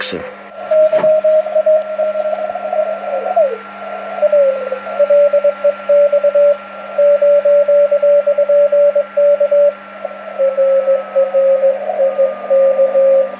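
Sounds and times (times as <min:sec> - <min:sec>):
constant low hum: 0:00.0 - 0:13.3
slow Morse code tone on an amateur radio band: 0:00.0 - 0:13.3.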